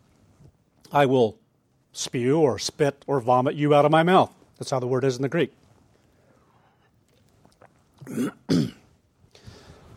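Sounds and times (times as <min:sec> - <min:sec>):
speech: 0:00.9 - 0:01.4, 0:02.0 - 0:05.6
person clearing throat from a tickle in the throat: 0:08.0 - 0:08.9.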